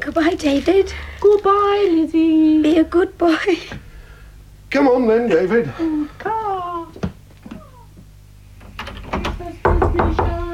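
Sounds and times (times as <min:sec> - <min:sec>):
speech: 0:00.2 - 0:03.8, 0:04.7 - 0:06.4
knocking on a locked door: 0:09.1 - 0:10.5.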